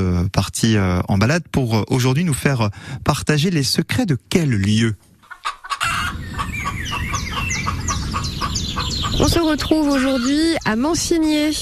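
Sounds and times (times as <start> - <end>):
speech: 0.0 - 5.6, 9.2 - 11.6
flock of hens clucking in a farm field: 5.2 - 10.8.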